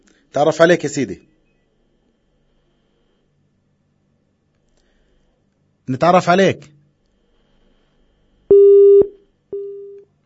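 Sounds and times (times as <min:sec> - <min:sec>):
speech: 0:00.4 - 0:01.3, 0:05.9 - 0:06.8
telephone busy tone after a dropped call: 0:08.5 - 0:10.0.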